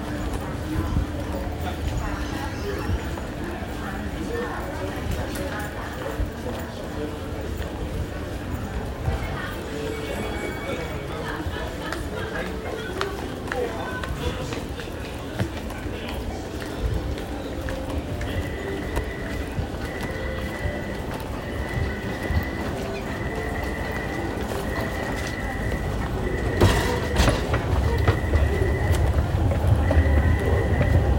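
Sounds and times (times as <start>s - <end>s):
crowd murmur in a busy metro station: 0.0s - 31.1s
footsteps in a busy metro station: 11.8s - 31.1s.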